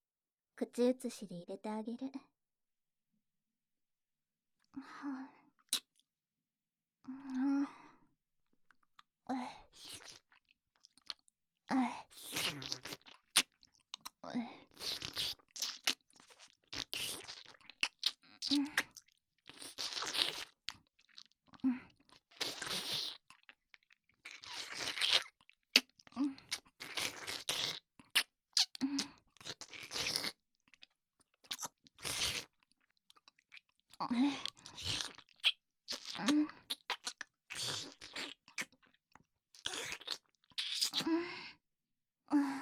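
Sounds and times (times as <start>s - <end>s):
speech: 0.6s - 2.4s, 4.8s - 5.4s, 7.1s - 7.8s, 9.3s - 10.1s, 11.7s - 12.9s, 18.5s - 18.7s
chocolate being chewed and crunched: 8.7s - 11.3s, 11.9s - 41.1s.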